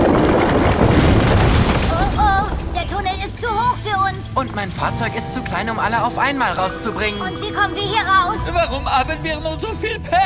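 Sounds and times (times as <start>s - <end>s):
ramp collapsing with deep rumbling and crashing in an animated children's adventure: 0.0s - 3.4s
speech: 4.9s - 10.2s
voices crying out: 5.2s - 8.8s.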